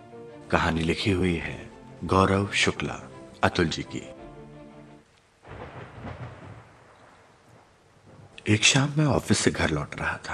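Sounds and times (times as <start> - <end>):
speech: 0.5 - 4.2, 8.5 - 10.3
steady heavy monsoon rain: 5.0 - 10.3
deep rumble of thunder: 5.4 - 10.3.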